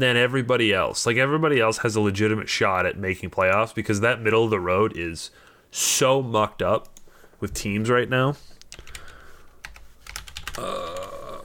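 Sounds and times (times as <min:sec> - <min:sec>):
speech: 0:00.0 - 0:08.5, 0:10.6 - 0:11.0
typing on a computer keyboard: 0:08.6 - 0:11.1.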